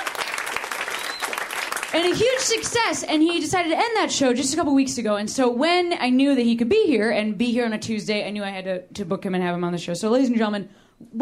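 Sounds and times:
crowd applauding: 0:00.0 - 0:03.1
speech: 0:01.9 - 0:11.2.

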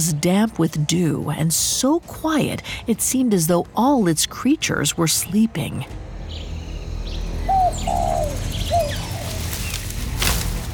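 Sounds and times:
speech: 0:00.0 - 0:06.1
small birds chirping faintly: 0:04.7 - 0:10.7
pigeon cooing on a low branch in damp early morning woods: 0:07.5 - 0:09.4
rustle or flutter: 0:09.0 - 0:10.7.

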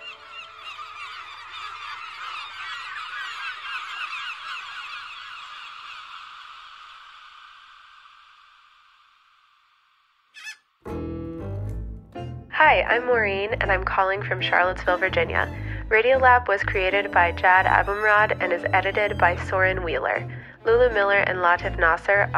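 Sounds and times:
flock of birds squawking and honking: 0:00.0 - 0:07.6, 0:10.3 - 0:10.6
speech: 0:12.6 - 0:22.3.

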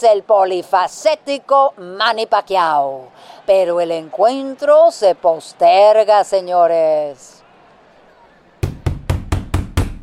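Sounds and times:
speech: 0:00.0 - 0:07.4
knocking on a door: 0:08.6 - 0:10.0.

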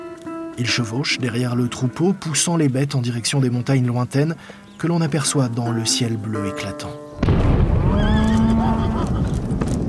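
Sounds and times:
speech: 0:00.6 - 0:07.5
loud explosion on a ranch in West Texas: 0:07.2 - 0:09.8
frightened rearing horse whinnying: 0:07.9 - 0:09.4.

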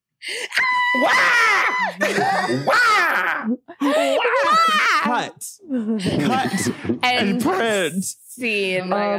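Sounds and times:
speech: 0:00.2 - 0:09.1
person performing theatrical shrieks and wails for a monster attack scene: 0:00.5 - 0:05.3
laughter: 0:01.7 - 0:05.3, 0:06.0 - 0:07.6.

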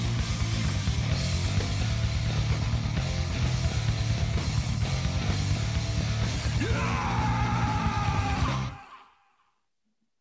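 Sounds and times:
loud dense rock song with heavy bass and drums: 0:00.0 - 0:08.8
high wavering falsetto scream: 0:06.5 - 0:09.6.

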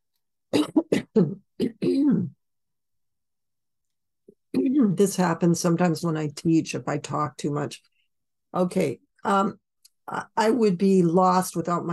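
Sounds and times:
person clearing throat ending in gravelly rasp: 0:00.5 - 0:02.4
speech: 0:00.7 - 0:01.4, 0:04.8 - 0:07.9, 0:08.5 - 0:11.9.

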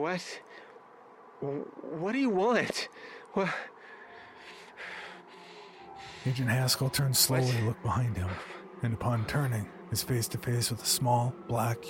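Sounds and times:
speech: 0:00.0 - 0:00.6, 0:01.4 - 0:03.7, 0:06.2 - 0:11.8
man breathing quickly and frightened: 0:02.9 - 0:06.4, 0:08.3 - 0:08.8.

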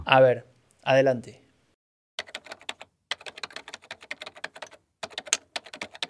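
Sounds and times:
speech: 0:00.1 - 0:01.4
rapid typing on a keyboard: 0:02.2 - 0:06.0.

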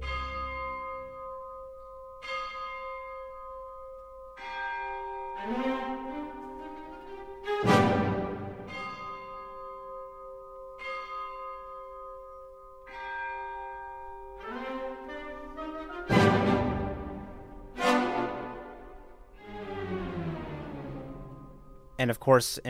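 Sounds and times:
deep bells tolling: 0:00.0 - 0:22.4
sustained orchestral tones: 0:04.8 - 0:09.5, 0:14.3 - 0:22.2
speech: 0:05.4 - 0:05.8, 0:22.0 - 0:22.6.

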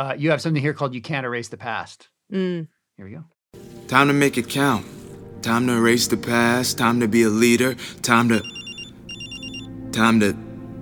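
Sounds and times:
speech: 0:00.0 - 0:08.6, 0:10.0 - 0:10.4
telephone ringing with bright trilling electronic tones: 0:08.3 - 0:09.7.

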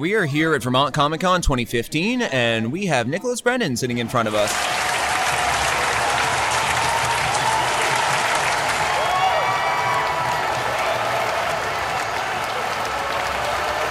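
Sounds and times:
speech: 0:00.0 - 0:04.9
audience applause: 0:04.3 - 0:13.9
cheers and whoops: 0:04.4 - 0:13.9.

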